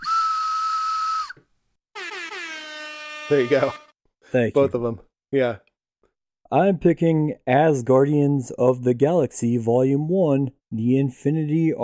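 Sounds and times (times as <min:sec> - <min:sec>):
loud steady whistle blast with a pure tone: 0:00.0 - 0:01.4, 0:02.0 - 0:03.9
brief harsh air horn blare: 0:01.9 - 0:04.0
speech: 0:03.3 - 0:05.6, 0:06.5 - 0:11.8.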